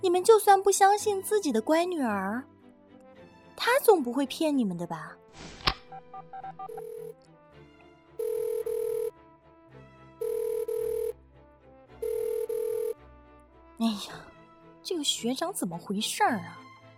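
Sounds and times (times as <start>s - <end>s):
speech: 0.0s - 2.6s, 3.6s - 7.3s, 13.8s - 16.6s
quiet music: 0.0s - 16.9s
dialing beep: 5.9s - 7.1s, 8.2s - 9.1s, 10.2s - 11.1s, 12.0s - 13.0s
phone ringback tone of an unanswered call: 5.9s - 7.2s, 8.2s - 9.1s, 10.2s - 11.2s, 12.0s - 13.0s.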